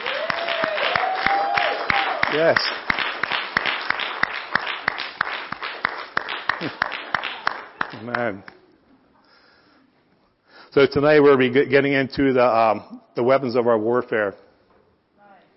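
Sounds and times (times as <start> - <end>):
audience voices whooping and cheering: 0.0 - 2.3
audience clapping steadily in rhythm: 0.0 - 8.7
speech: 2.3 - 2.8, 6.6 - 6.8, 8.0 - 8.6, 10.8 - 14.4.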